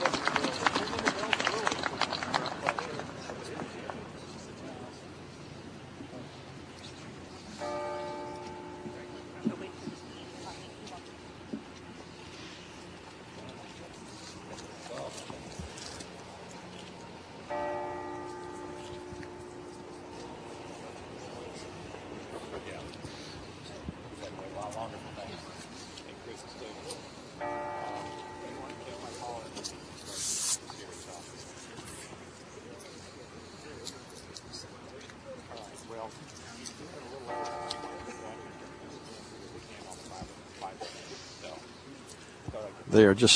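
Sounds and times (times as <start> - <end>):
outdoor crowd murmuring at a governor's swearing-in in Missouri: 0.0 - 43.3
church bells ringing from a church across the way: 7.3 - 11.5, 17.3 - 23.7, 26.6 - 30.2, 36.9 - 40.3
speech: 42.9 - 43.3.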